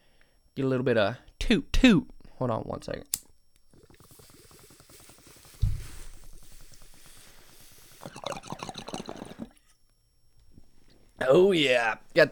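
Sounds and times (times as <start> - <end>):
speech: 0.6 - 3.2, 11.3 - 12.2
tobacco water pipe bubbling during a smoke hit: 3.7 - 9.6.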